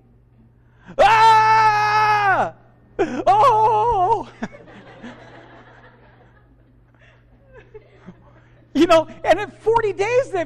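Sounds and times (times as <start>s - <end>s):
person yelling an imitated army war cry: 1.0s - 2.6s, 3.2s - 4.3s
laughter: 3.0s - 8.8s
speech: 8.9s - 9.1s, 9.8s - 10.4s.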